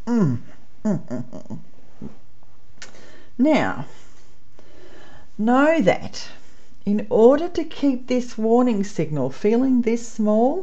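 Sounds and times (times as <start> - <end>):
voiced yawn after a stretch: 0.0 - 1.6
speech: 0.1 - 2.2, 3.4 - 4.1, 5.4 - 10.6.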